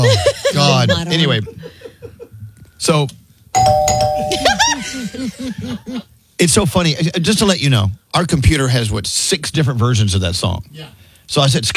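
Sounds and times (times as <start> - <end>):
laughter: 0.0 - 2.4, 4.3 - 6.1
speech: 1.1 - 1.6, 2.8 - 11.7
electronic doorbell chime sound effect: 3.6 - 4.8.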